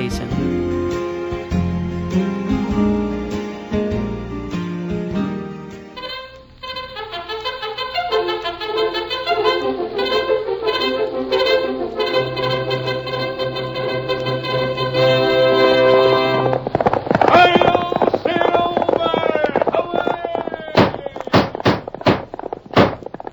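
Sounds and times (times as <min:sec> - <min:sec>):
orchestral music: 0:00.0 - 0:16.7
galloping horse hoofbeats: 0:06.0 - 0:23.3.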